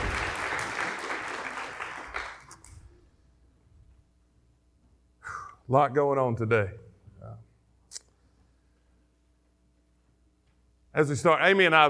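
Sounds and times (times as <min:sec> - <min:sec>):
church audience applauding: 0:00.0 - 0:02.6
speech: 0:05.7 - 0:07.5, 0:11.0 - 0:11.8.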